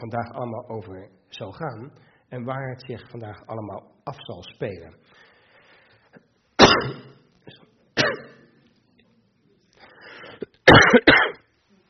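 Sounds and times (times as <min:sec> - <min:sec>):
speech: 0:00.0 - 0:05.3
person with a bad cold coughing harshly: 0:06.6 - 0:08.5, 0:10.4 - 0:11.5.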